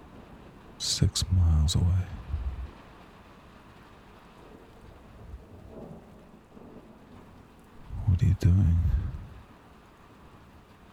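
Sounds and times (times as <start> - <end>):
dense hiss of heavy rain: 0.0 - 5.8, 7.8 - 10.9
speech: 0.8 - 2.2, 8.4 - 9.0
low thunder rumbling during rainstorm: 2.1 - 2.8, 4.6 - 6.8, 7.8 - 9.4.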